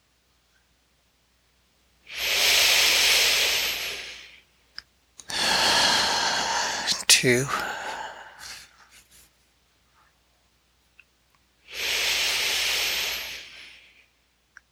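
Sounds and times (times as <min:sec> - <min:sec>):
deep lower belly breathing: 0:02.1 - 0:04.4, 0:05.3 - 0:08.8, 0:11.7 - 0:14.0
speech: 0:07.2 - 0:07.6.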